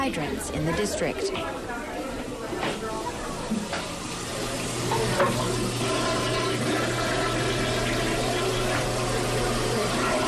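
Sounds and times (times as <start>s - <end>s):
speech: 0.0s - 1.9s
toilets flushing to flush a water system: 0.0s - 10.2s
water running from faucets to flush a water system: 2.4s - 10.2s.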